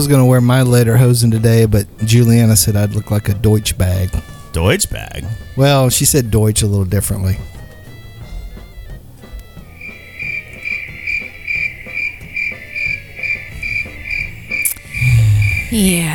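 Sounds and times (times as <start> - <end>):
speech: 0.0 - 7.6, 15.7 - 16.1
crickets chirping in a high pulsing trill: 9.5 - 16.1.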